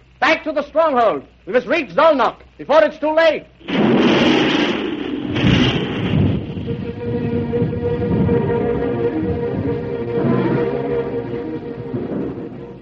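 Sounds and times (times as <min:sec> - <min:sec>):
speech: 0:00.3 - 0:03.5
rolling thunder during a storm over a dark open plain: 0:03.6 - 0:12.7.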